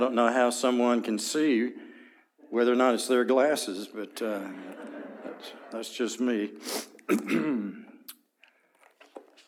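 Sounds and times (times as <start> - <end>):
speech: 0.0 - 1.9, 2.5 - 7.8
laughter: 4.2 - 6.4
rough cough with a voiced throat-clearing quality: 7.0 - 8.0.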